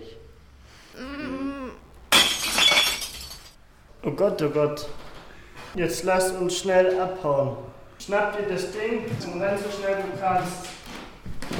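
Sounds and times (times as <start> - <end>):
short voiced sound: 0.9 - 1.9
bright tinkling glass shards scattering: 2.1 - 3.6
glass pane smashed with a crowbar: 2.1 - 3.6
speech: 4.0 - 5.0, 5.7 - 10.8.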